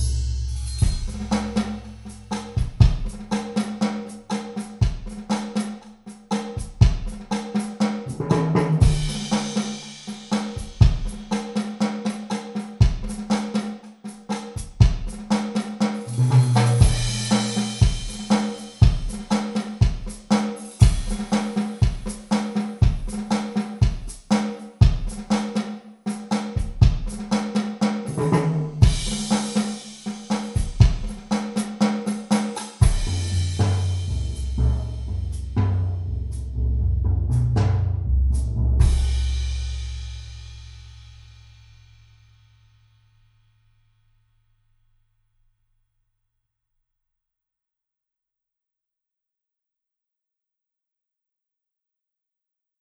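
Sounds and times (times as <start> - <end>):
snare drums played with rods: 0.1 - 36.5, 37.3 - 41.8.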